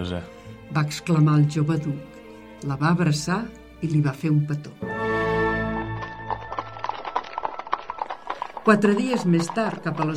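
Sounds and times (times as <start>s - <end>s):
speech: 0.0s - 4.9s, 8.7s - 10.1s
hooves of a horse-drawn carriage clip-clopping: 5.7s - 10.1s.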